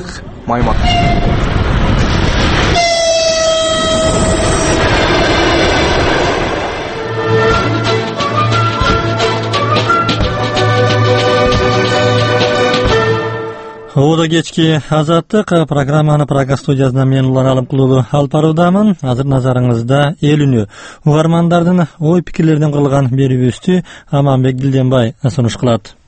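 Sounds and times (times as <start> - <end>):
speech: 0.0 - 1.4, 14.0 - 26.0
low rumble of a train moving along the railway: 0.0 - 14.0
train horn blast: 0.7 - 1.5, 2.7 - 13.9.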